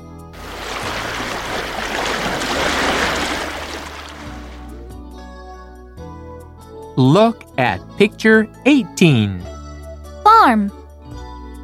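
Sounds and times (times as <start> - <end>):
big boat moving through water: 0.4 - 4.8
speech: 7.0 - 9.5, 10.4 - 10.8.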